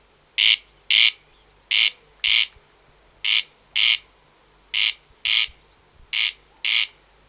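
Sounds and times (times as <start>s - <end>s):
Corn crake Crex crex singing rasping double notes: 0.4s - 2.6s, 3.2s - 4.1s, 4.7s - 7.0s.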